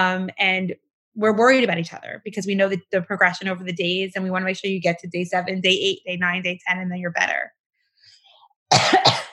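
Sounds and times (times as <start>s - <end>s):
speech: 0.0s - 7.6s, 8.7s - 9.2s
person coughing: 8.7s - 9.3s.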